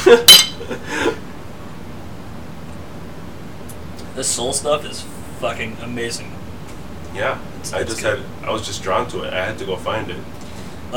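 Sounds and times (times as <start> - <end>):
beer bottles clinking in a toast: 0.0 - 0.6
speech: 0.1 - 0.9, 4.2 - 6.4, 7.1 - 10.9.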